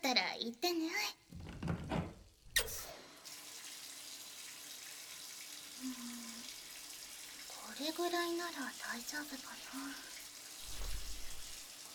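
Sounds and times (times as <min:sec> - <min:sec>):
speech: 0:00.1 - 0:01.2, 0:08.1 - 0:10.2
hot water running from a tap: 0:02.2 - 0:11.9.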